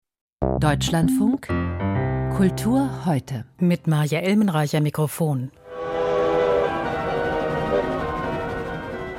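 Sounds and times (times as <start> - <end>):
speech: 0.4 - 5.6
steam locomotive train rattling through a snowy Swiss winter landscape: 6.0 - 9.1.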